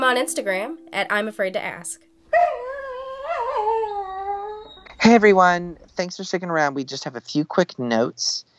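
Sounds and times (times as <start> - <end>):
speech: 0.0 - 2.4, 5.0 - 8.5
dog whining howl: 2.3 - 5.0.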